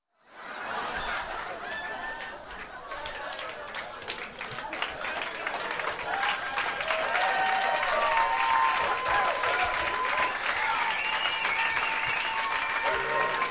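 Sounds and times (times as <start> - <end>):
laughter: 0.3 - 7.2, 12.8 - 13.4
audience in a comedy bar applauding: 0.8 - 13.4.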